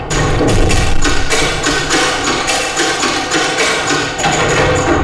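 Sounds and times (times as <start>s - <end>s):
sound effect from a Korg MSC-16S: 0.1s - 4.9s.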